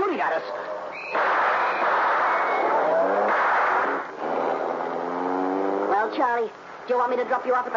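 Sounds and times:
speech: 0.1 - 1.4, 6.3 - 7.7
car engine roaring as car speeds off: 1.2 - 6.8
rushing road noise: 1.2 - 6.9.

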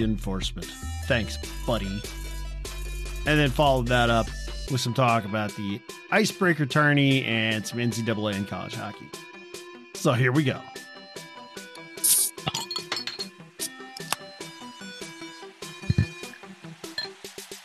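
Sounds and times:
speech: 0.0 - 9.3, 10.0 - 10.8
glasses clinking and chiming: 12.1 - 13.4, 16.9 - 17.2.

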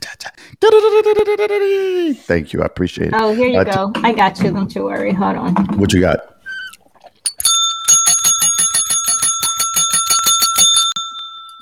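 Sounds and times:
speech: 0.7 - 6.3
bicycle bell ringing: 7.3 - 11.6.

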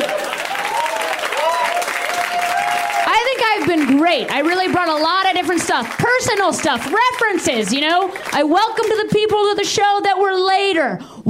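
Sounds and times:
audience applause: 0.0 - 9.0
speech: 4.1 - 11.2.

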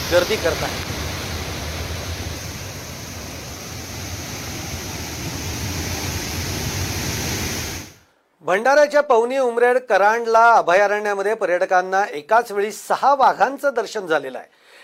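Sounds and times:
waterfall overflowing after rains in the Satpura hills: 0.0 - 8.0
speech: 0.1 - 1.0, 8.5 - 14.6.

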